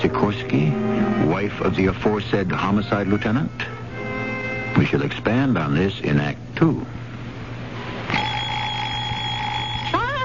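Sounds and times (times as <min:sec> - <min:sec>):
speech: 0:00.0 - 0:03.8, 0:04.8 - 0:07.0
faint low hum: 0:00.0 - 0:10.2
wind-up alarm clock ringing: 0:08.1 - 0:10.1.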